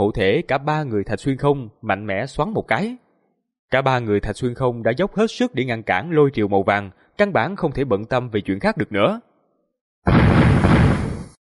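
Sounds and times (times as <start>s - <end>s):
speech: 0.0s - 3.0s, 3.7s - 9.3s, 10.0s - 10.4s
dull muffled explosion: 10.1s - 11.4s.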